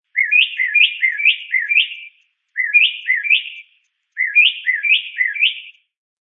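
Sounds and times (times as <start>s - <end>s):
mockingbird chirping short upslurred notes: 0.1s - 5.9s.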